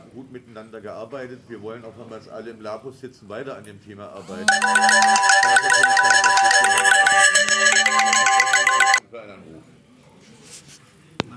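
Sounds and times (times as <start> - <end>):
speech: 0.2 - 7.3
phone ringtone for an incoming call during a meeting: 4.3 - 9.0.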